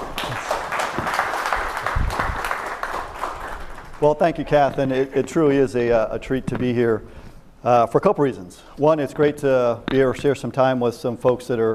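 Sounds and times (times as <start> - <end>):
audience applause for a speaker: 0.0 - 4.0
speech: 4.0 - 11.7.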